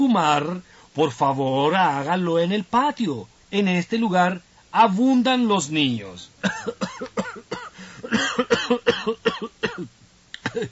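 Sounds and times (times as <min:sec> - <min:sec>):
speech: 0:00.2 - 0:07.1
person coughing: 0:06.4 - 0:10.7.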